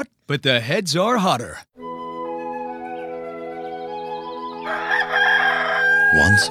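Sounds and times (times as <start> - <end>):
speech: 0.0 - 1.8, 6.1 - 6.4
rooster crowing: 4.4 - 6.4.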